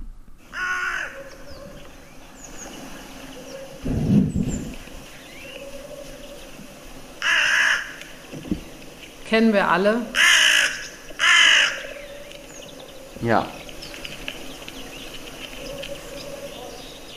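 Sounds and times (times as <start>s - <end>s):
hooded crow giving harsh rasping caws: 0.5s - 1.3s, 7.2s - 8.1s, 10.1s - 12.3s
speech: 9.3s - 10.2s, 13.3s - 13.6s.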